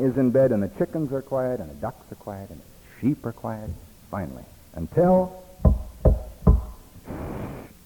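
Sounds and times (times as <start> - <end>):
speech: 0.0 - 6.2
knocking on a wooden door barred with a log through iron rings: 5.6 - 6.8.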